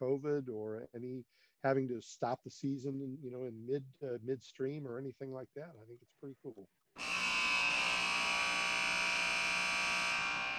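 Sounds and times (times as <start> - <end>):
speech: 0.0 - 7.1
buzzer horn blaring: 7.0 - 10.5.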